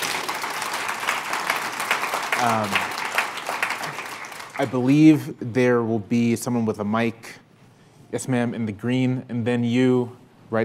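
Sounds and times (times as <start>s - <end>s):
audience applause: 0.0s - 5.0s
speech: 2.4s - 2.9s, 4.6s - 7.4s, 8.1s - 10.6s.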